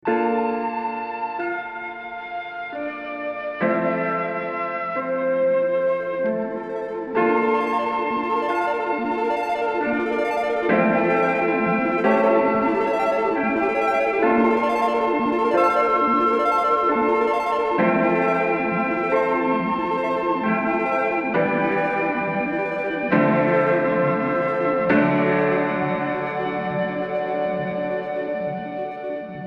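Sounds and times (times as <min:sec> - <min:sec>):
keyboard with wet Capitol Chambers reverb: 0:00.0 - 0:29.4.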